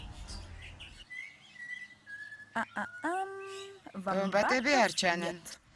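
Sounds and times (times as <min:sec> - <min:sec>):
pied currawongs calling in a wombat forest: 0:00.8 - 0:03.6
speech: 0:02.6 - 0:03.2, 0:04.0 - 0:05.6.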